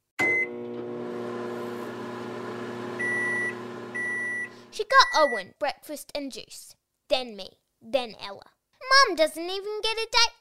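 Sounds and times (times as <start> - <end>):
microwave oven electronic beeps: 0.2 - 1.3, 2.2 - 5.4
microwave oven running with electrical hum: 0.2 - 4.7
speech: 4.8 - 10.4.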